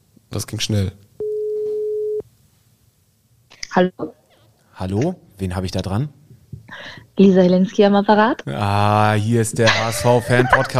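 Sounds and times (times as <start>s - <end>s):
speech: 0.4s - 1.1s, 3.7s - 4.2s, 4.8s - 10.7s
telephone ringback tone after dialling a number: 1.2s - 2.2s
laughter: 8.6s - 10.7s.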